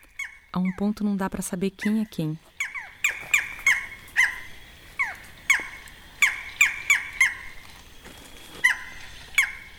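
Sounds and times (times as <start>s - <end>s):
barred forest falcon barking calls: 0.1s - 0.8s, 2.6s - 7.6s, 8.6s - 9.7s
speech: 0.6s - 2.5s.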